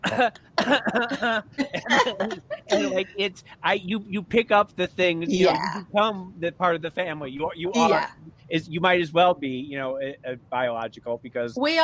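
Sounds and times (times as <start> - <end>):
person coughing with throaty, partly voiced coughs: 0.0 - 3.3
laughter: 0.1 - 6.1, 6.7 - 8.0
speech: 0.1 - 11.8.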